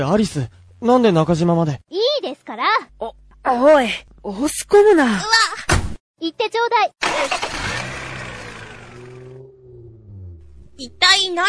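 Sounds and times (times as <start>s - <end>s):
speech: 0.0s - 5.6s, 6.2s - 7.6s, 10.8s - 11.4s
car engine roaring and accelerating: 7.0s - 11.4s.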